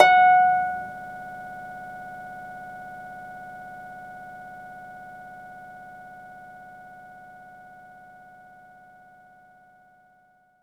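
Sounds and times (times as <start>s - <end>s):
orchestral harp note F sharp 5: 0.0s - 1.0s.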